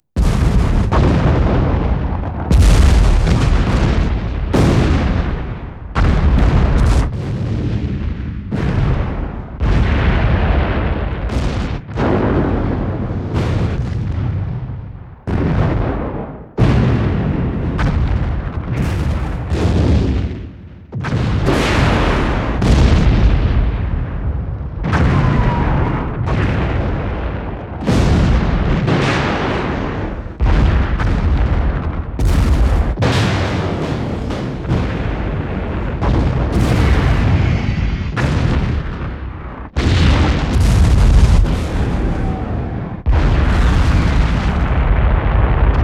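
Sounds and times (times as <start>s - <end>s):
large weapon explosions: 0.0s - 45.8s.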